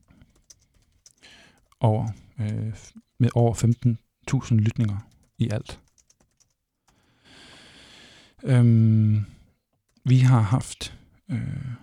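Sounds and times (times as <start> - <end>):
typing on a computer keyboard: 0.0 - 2.6, 3.5 - 3.9, 4.5 - 7.1
speech: 1.8 - 5.8, 8.4 - 9.4, 10.0 - 11.8.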